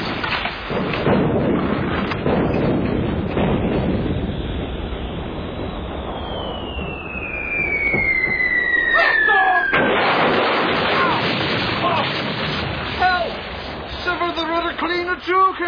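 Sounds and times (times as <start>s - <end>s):
cannons firing from a ship: 0.0s - 15.5s
rumbling roar with crackling bursts: 0.0s - 15.6s
descending whistle of cannon fire: 4.0s - 9.9s.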